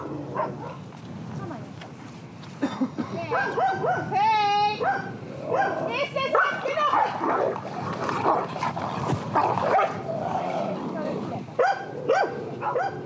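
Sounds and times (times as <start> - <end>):
two female dogs barking and growling in a scuffle over rank on a pasture: 0.0 - 0.9, 3.3 - 4.2, 4.8 - 13.0.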